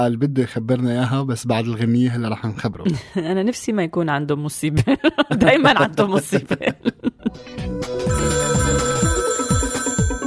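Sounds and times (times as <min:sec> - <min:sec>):
speech: 0:00.0 - 0:08.9
laughter: 0:04.8 - 0:07.6
old-fashioned telephone bell ringing: 0:08.0 - 0:10.2.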